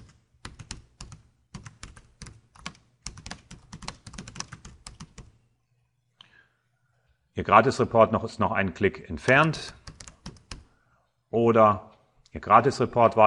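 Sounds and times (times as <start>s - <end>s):
typing on a computer keyboard entering an email subject line: 0.0s - 5.4s, 9.2s - 10.7s
speech: 7.4s - 9.8s, 11.3s - 13.2s.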